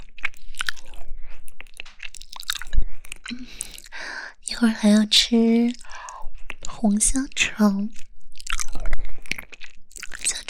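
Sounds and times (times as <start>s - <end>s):
crunchy chewing of cold-dressed pig ear: 0.0s - 4.0s, 5.7s - 6.8s, 7.9s - 10.4s
speech: 4.6s - 5.8s, 6.8s - 8.0s.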